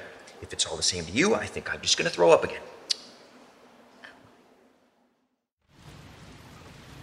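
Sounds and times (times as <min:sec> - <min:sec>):
speech: 0:00.4 - 0:02.8
steady rain: 0:05.6 - 0:07.0.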